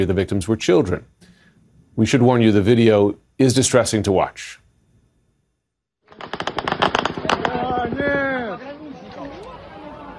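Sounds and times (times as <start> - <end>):
speech: 0.0 - 1.3, 2.0 - 4.6
crackling explosion blasts from drone debris: 6.2 - 8.4
people shouting: 7.6 - 10.1.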